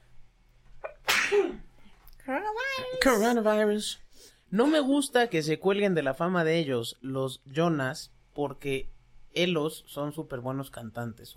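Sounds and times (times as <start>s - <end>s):
sneeze: 0.8s - 1.7s
speech: 2.3s - 11.3s.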